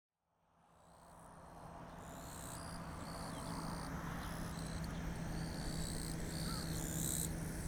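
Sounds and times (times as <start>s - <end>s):
Japanese bush crickets calling in daytime heat: 1.8s - 7.6s.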